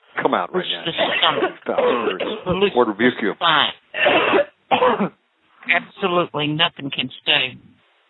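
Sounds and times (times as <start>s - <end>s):
speech: 0.3s - 7.7s
person coughing harshly: 0.9s - 2.8s, 4.0s - 5.2s.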